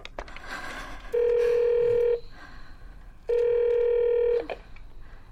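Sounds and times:
electronic telephone keypad dialing tones: 1.1 - 2.2, 3.3 - 4.6.

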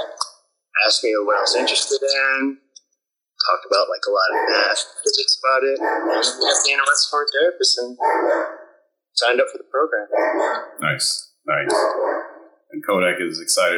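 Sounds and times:
speech: 0.9 - 2.6, 3.4 - 8.6, 9.2 - 13.7
dog barking at home: 4.1 - 5.0, 5.7 - 6.9, 8.0 - 8.8, 10.1 - 10.7, 11.5 - 12.5.

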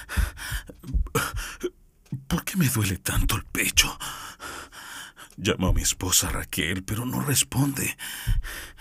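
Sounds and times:
person choking and gasping while trying to cough: 0.2 - 1.8
speech: 2.5 - 4.3, 5.4 - 8.7.

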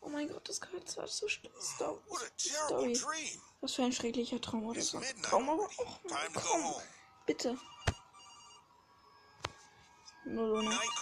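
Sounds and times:
speech: 0.5 - 7.7, 10.2 - 11.0
telephone ringing in a horror video game: 6.1 - 11.0.

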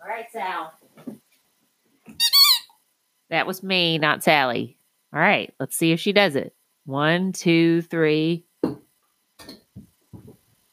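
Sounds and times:
speech: 0.2 - 1.1, 3.3 - 8.5
dog's squeaky toy ball squeezed: 2.2 - 2.8
soft low thump: 9.8 - 10.4.

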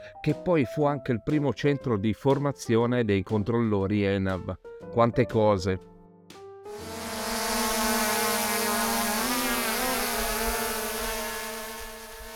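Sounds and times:
speech: 0.2 - 5.9
drone buzzing with whining rotor tones: 6.7 - 12.3.

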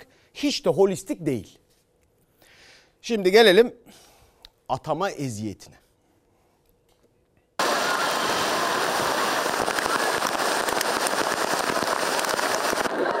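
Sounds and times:
speech: 0.4 - 1.6, 3.0 - 4.0, 4.7 - 5.8
heavy rain and hail: 7.6 - 13.1.

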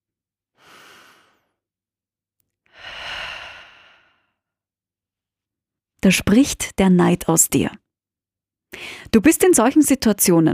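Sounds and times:
person inhaling deeply: 0.6 - 1.6, 2.7 - 4.4
person exhaling deeply: 2.7 - 4.4
speech: 6.0 - 7.8, 8.7 - 10.5.

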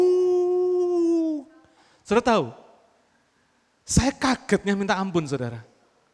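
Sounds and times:
man's voice imitating a tiger's roar: 0.0 - 1.5
speech: 2.1 - 2.6, 3.9 - 5.7.

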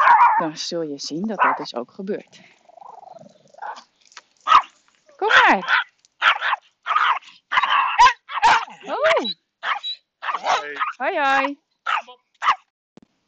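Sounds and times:
small dog barking at another dog: 0.0 - 0.4, 1.4 - 1.7, 4.4 - 12.7
speech: 0.4 - 2.6, 5.5 - 5.9, 11.0 - 11.6.

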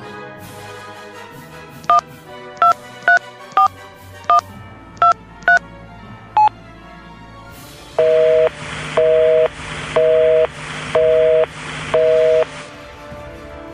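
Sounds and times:
phone keypad beeps dialing a number: 2.6 - 3.7, 5.0 - 5.6, 8.0 - 12.5
electronic telephone ringing tone: 5.0 - 5.6, 8.0 - 12.5.

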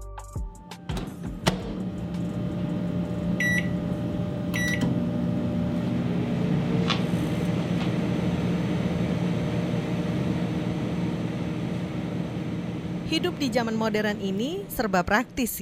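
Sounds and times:
microwave oven humming with a low mechanical drone: 0.4 - 15.6
speech: 13.2 - 15.6.

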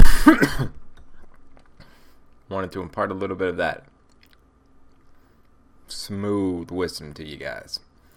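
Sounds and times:
person coughing harshly and throatily: 0.0 - 0.8
speech: 2.6 - 3.9, 6.1 - 7.9.

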